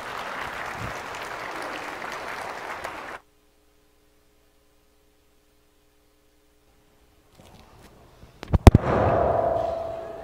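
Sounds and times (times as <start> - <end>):
audience applause: 0.0 - 3.2
faint hum: 0.0 - 10.2.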